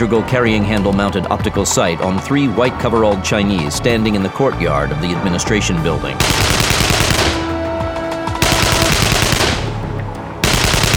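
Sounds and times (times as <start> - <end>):
speech: 0.0 - 6.8
automatic rifle gunfire volleys: 6.2 - 7.8, 8.4 - 10.9.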